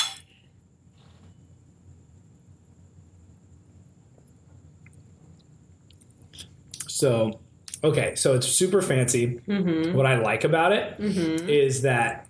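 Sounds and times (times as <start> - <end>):
wine glasses clinking in a toast: 0.0 - 0.2
low steady hum: 0.0 - 12.2
speech: 6.4 - 12.2.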